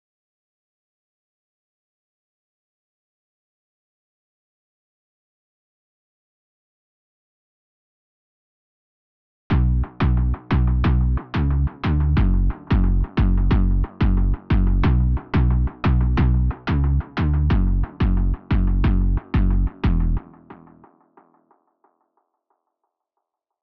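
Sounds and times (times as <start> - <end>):
bass melody loop in B minor: 9.5 - 20.9.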